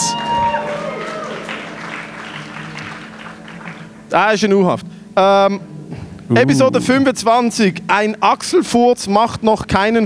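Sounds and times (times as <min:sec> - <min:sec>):
applause: 0:00.0 - 0:04.2
speech: 0:04.1 - 0:05.7, 0:06.3 - 0:10.0
faint tonal sounds: 0:05.2 - 0:08.0.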